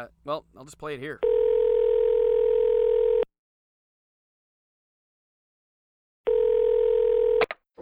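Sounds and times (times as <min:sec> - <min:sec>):
speech: 0:00.0 - 0:01.4
steady electronic telephone tone: 0:01.2 - 0:03.3, 0:06.3 - 0:07.5.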